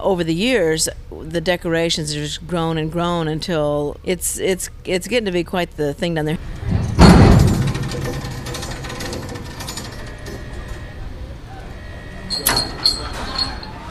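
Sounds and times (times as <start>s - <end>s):
speech: 0.0s - 6.7s
car deck elevator carrying kids running with mechanical rumble and hum: 0.0s - 13.8s
loud opening clank of car deck elevator: 6.6s - 9.6s
sharp metallic knocks and rattles: 6.6s - 10.2s, 12.3s - 13.8s.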